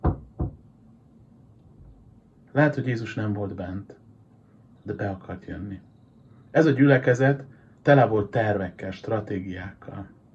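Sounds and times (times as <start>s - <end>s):
knocking on a wooden door: 0.0s - 0.6s
speech: 2.6s - 4.0s, 4.8s - 5.9s, 6.5s - 10.2s.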